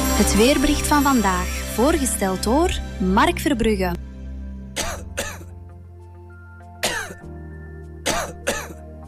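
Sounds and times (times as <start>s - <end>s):
speech: 0.2s - 4.0s
dry harsh coughing with throat clearing: 4.7s - 5.5s, 6.8s - 7.3s, 8.1s - 8.8s.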